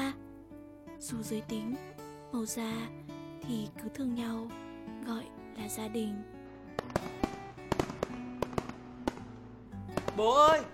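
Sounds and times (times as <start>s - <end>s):
speech: 1.0s - 7.0s, 10.2s - 10.7s
fireworks bursting: 6.7s - 10.7s.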